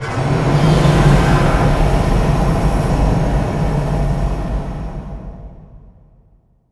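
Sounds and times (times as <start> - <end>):
nuclear explosion hit: 0.0 - 4.9.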